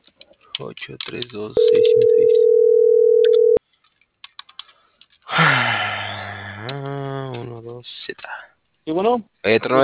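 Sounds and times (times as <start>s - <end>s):
speech: 0.6s - 2.9s, 8.9s - 9.8s
steady telephone line tone: 1.6s - 3.6s.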